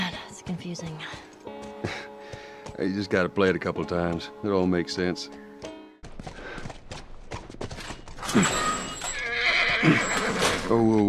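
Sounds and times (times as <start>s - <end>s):
faint hooves clip-clopping: 0.0s - 11.0s
speech: 0.6s - 1.3s, 2.8s - 5.4s, 10.7s - 11.0s
horse neighing: 8.2s - 10.8s.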